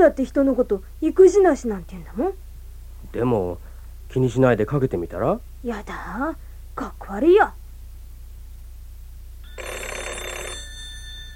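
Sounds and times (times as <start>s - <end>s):
speech: 0.0s - 2.4s, 3.1s - 7.6s
telephone ringing: 9.4s - 11.3s.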